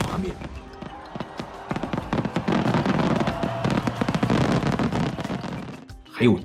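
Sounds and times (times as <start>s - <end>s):
huge four-shaku fireworks shell bursting at Nagaoka display in Japan: 0.0s - 5.9s
speech: 6.2s - 6.4s.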